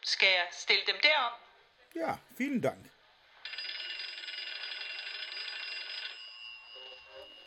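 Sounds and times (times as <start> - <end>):
speech: 0.0 - 3.0
faint noise: 0.0 - 4.4, 6.6 - 7.4
telephone bell ringing during a theatre performance: 3.4 - 7.4.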